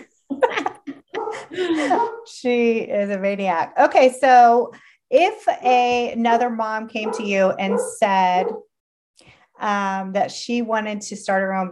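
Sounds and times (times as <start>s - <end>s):
laughter: 0.0s - 2.1s
dog barking at a delivery: 1.2s - 2.3s, 7.0s - 8.7s
speech: 1.5s - 11.7s.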